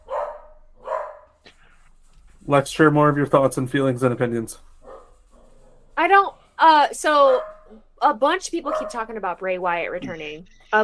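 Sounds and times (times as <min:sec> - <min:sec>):
dog barking: 0:00.0 - 0:01.4, 0:04.8 - 0:05.9, 0:07.3 - 0:07.7, 0:08.7 - 0:09.0
speech: 0:02.5 - 0:04.7, 0:06.0 - 0:10.8.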